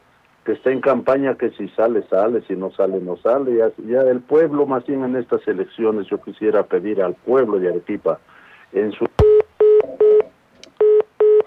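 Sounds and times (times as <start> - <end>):
speech: 0.4 - 9.1
telephone busy tone after a call is cut off: 9.2 - 11.4.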